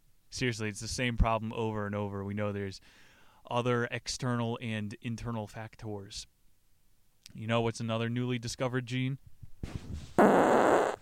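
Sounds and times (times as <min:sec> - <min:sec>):
speech: 0:00.3 - 0:06.3, 0:07.3 - 0:10.0
loud buzzy fart: 0:10.2 - 0:10.9.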